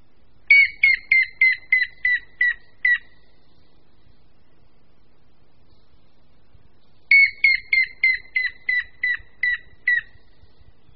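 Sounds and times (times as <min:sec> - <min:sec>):
grey-headed woodpecker whistled call: 0:00.5 - 0:03.4, 0:07.1 - 0:10.4.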